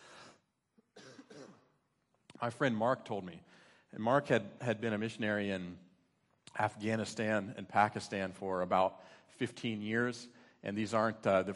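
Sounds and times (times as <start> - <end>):
person clearing throat: 0.9 - 1.8
person coughing harshly: 0.9 - 1.8
speech: 2.4 - 5.9, 6.5 - 11.5.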